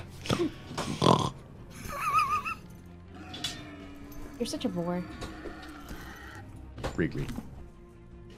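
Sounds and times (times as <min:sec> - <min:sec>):
person imitating angry pig grunts, snorts and squeals: 0:00.2 - 0:01.4
speech: 0:00.3 - 0:00.6, 0:04.4 - 0:05.3, 0:07.0 - 0:07.5.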